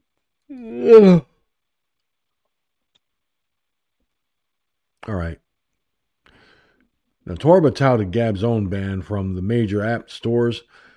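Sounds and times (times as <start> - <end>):
person yawning: 0.5 - 1.3
speech: 0.5 - 1.3, 5.1 - 5.4, 7.3 - 10.8.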